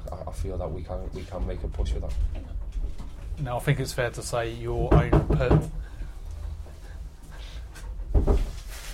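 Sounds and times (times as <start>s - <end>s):
speech: 0.4s - 2.5s, 3.4s - 5.8s
knock on a door: 4.8s - 5.8s, 8.1s - 8.5s.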